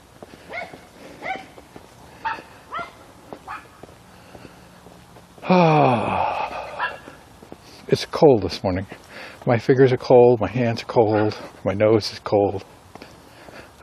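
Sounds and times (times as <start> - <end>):
dog drawn-out whining bark: 0.5 - 1.6, 2.2 - 3.7, 6.8 - 7.1
speech: 5.5 - 5.9, 7.9 - 12.7.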